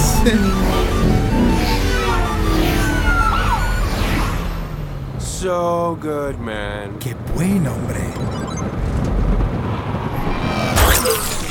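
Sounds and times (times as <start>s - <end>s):
road rumble from passing cars: 0.0s - 11.5s
speech: 0.2s - 1.2s, 5.4s - 9.3s
two cars whooshing past: 0.5s - 5.2s, 9.3s - 11.5s.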